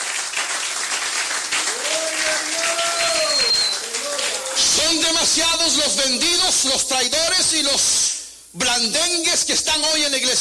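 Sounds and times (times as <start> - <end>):
audience applauding: 0.0 - 5.0
speech: 5.1 - 10.3.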